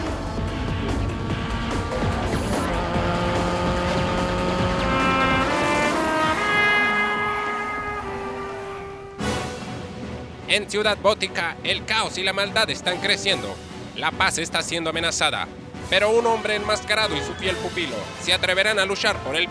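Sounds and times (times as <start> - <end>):
futuristic cleaner-running car engine whining at speed: 0.0 - 9.2
speech: 10.5 - 19.5.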